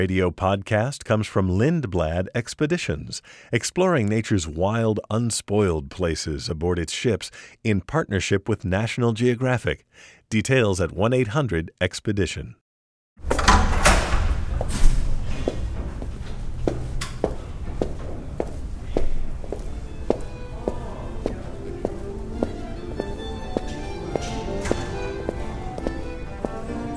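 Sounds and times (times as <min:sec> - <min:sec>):
speech: 0:00.0 - 0:12.6
footsteps walking down the main entrance hall of a new building: 0:14.3 - 0:26.9.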